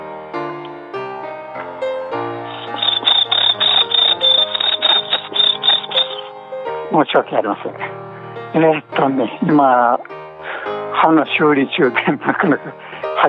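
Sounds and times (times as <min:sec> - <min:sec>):
Tsuzuresase cricket chirping: 0:02.4 - 0:06.3
speech: 0:06.9 - 0:07.9, 0:08.5 - 0:10.1, 0:11.0 - 0:13.2.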